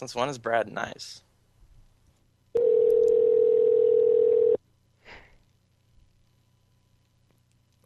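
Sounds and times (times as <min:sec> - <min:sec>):
speech: 0:00.0 - 0:01.3
electronic phone ring tone: 0:02.6 - 0:04.6.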